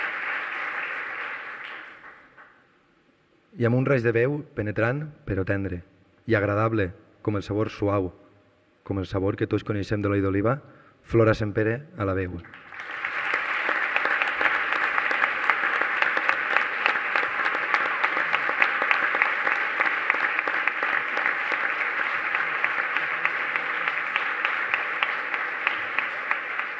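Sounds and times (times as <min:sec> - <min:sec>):
audience applause: 0:00.0 - 0:02.6, 0:12.5 - 0:26.7
speech: 0:03.6 - 0:08.2, 0:08.9 - 0:12.6.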